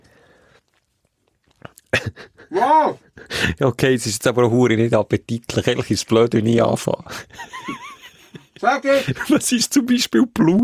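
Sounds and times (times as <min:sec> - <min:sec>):
chewing: 0:00.0 - 0:02.0
wet clicky lip smacking: 0:00.4 - 0:01.9
speech: 0:02.5 - 0:07.8, 0:08.6 - 0:10.6
laughter: 0:07.1 - 0:09.4.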